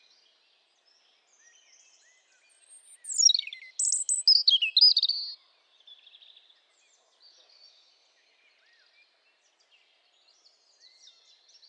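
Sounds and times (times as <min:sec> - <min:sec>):
European robin Erithacus rubecula singing: 0:02.7 - 0:05.4.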